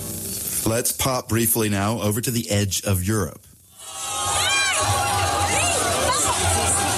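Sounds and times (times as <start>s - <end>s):
speech: 0.7s - 3.5s
crowd of several hundred people cheering: 3.8s - 6.9s
individual shouts and whoops: 3.8s - 6.9s.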